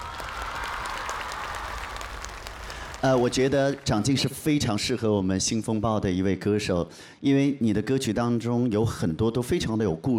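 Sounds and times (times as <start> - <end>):
audience clapping after a vote: 0.0 - 4.6
speech: 3.0 - 10.1.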